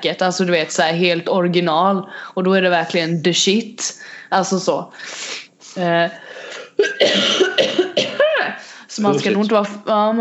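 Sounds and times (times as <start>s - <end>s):
speech: 0.0s - 10.1s
person coughing harshly: 6.6s - 8.3s.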